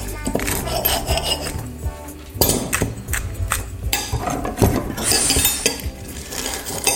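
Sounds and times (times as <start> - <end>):
cutlery and dishes clattering: 0.2 - 1.7, 2.4 - 6.9
cutlery scraping against plates: 0.3 - 1.8, 3.9 - 6.9.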